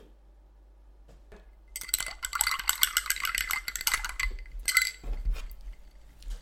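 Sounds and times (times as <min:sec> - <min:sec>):
ice and glassware clinking as a cocktail is mixed at a mixing station: 0:01.7 - 0:06.3.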